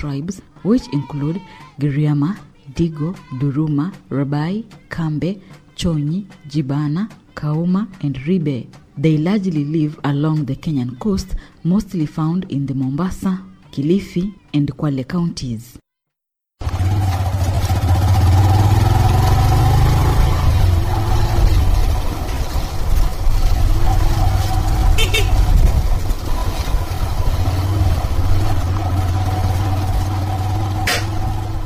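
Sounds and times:
speech: 0.0s - 15.8s
motorbike taxi engine droning during a ride: 16.6s - 31.6s
brief higher clicks: 30.9s - 31.2s.

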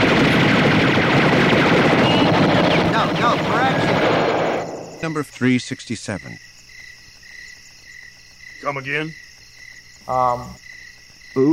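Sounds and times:
gunfire from a counterterrorism task force: 0.0s - 5.0s
speech: 5.0s - 6.5s, 8.6s - 9.2s, 10.1s - 10.6s, 11.4s - 11.5s.

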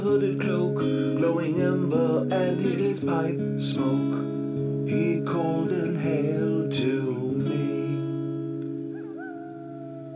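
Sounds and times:
speech: 0.0s - 7.8s
dust wolf howling: 8.7s - 10.1s.

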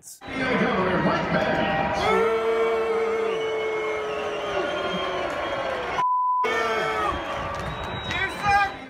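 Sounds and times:
large crowd booing and chanting at a speech: 0.2s - 8.8s
short bleep tone: 6.0s - 6.5s.

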